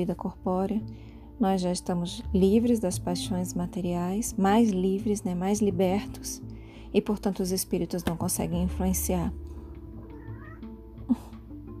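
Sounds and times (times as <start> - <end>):
speech: 0.0 - 9.4
cat meowing: 10.0 - 10.8.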